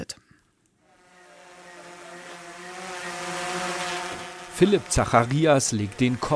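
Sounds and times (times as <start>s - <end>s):
remote-controlled camera drone hovering overhead: 0.9s - 6.3s
speech: 4.6s - 6.3s.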